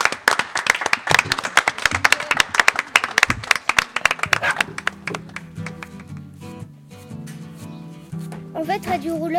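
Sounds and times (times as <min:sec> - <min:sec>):
audience applause: 0:00.0 - 0:06.1
speech: 0:08.6 - 0:09.3.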